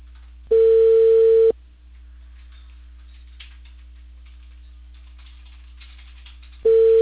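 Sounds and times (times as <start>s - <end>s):
telephone ringback tone of an unanswered call to a mobile phone: 0.5s - 1.5s, 6.7s - 7.0s.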